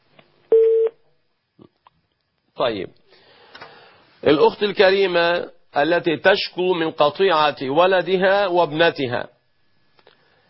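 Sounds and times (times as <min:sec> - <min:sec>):
telephone tone signalling an incoming call: 0:00.5 - 0:01.0
speech: 0:02.6 - 0:03.2, 0:04.2 - 0:09.4.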